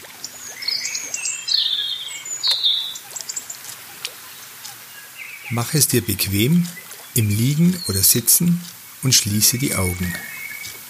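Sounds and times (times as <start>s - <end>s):
soft steady water-like noise: 0.0s - 10.8s
several birds chirping and trilling by a lake: 0.2s - 10.8s
speech: 5.5s - 10.3s.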